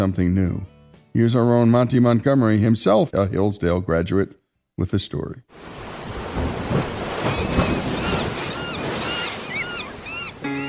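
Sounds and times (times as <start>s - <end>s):
speech: 0.0s - 5.8s
ocean waves breaking in a steady roar of surf: 5.5s - 10.6s
high chirping bird calls: 7.2s - 10.6s.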